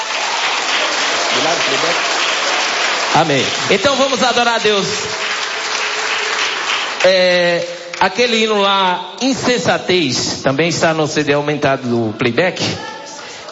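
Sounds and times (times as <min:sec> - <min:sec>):
crowd clapping in praise during a worship service: 0:00.0 - 0:08.6
speech: 0:01.6 - 0:02.1, 0:03.2 - 0:05.3, 0:07.0 - 0:12.9.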